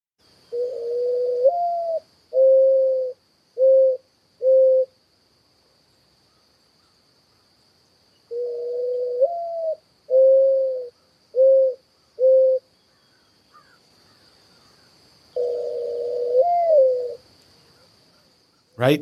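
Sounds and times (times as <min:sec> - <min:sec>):
mourning dove cooing call: 0:00.4 - 0:04.9, 0:08.3 - 0:17.9
faint steady high hum: 0:18.8 - 0:19.0
speech: 0:18.8 - 0:19.0.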